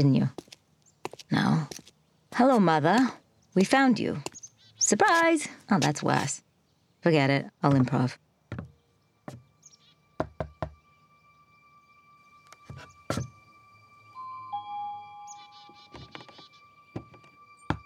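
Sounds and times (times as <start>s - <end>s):
speech: 0.0s - 0.5s, 1.3s - 6.4s, 7.0s - 8.2s
sharp knocks on a door: 8.5s - 8.7s, 10.2s - 10.8s.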